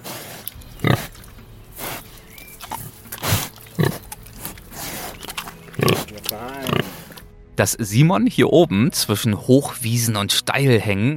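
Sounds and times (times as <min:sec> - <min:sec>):
two pigs grunting and snuffling on a mountain farm in South Tyrol: 0:00.0 - 0:07.2
faint outdoor noise on a mountain farm: 0:00.0 - 0:07.5
speech: 0:06.3 - 0:06.7, 0:07.6 - 0:11.1.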